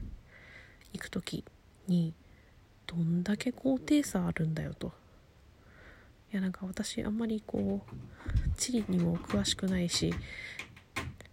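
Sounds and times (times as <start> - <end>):
steady low hum: 0.0 - 11.3
speech: 1.1 - 2.2, 2.9 - 5.0, 6.3 - 10.7
cat scratching its claws on a surface: 7.6 - 11.2.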